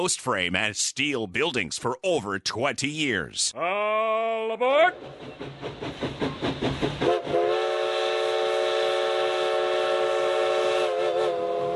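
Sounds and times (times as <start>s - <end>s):
speech: 0.0s - 7.0s
historic steam locomotive chuffing on a scenic coastal railroad: 4.9s - 11.7s
historic steam locomotive whistle: 7.0s - 11.7s.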